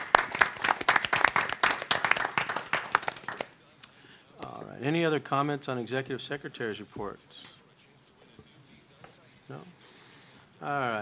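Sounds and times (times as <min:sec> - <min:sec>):
applause from a modest group: 0:00.0 - 0:03.6
speech: 0:04.8 - 0:07.6, 0:10.6 - 0:11.0.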